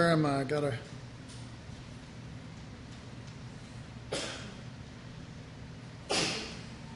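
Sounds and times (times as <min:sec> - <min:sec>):
speech: 0:00.1 - 0:01.0
person sneezing: 0:04.1 - 0:04.6, 0:06.1 - 0:06.7.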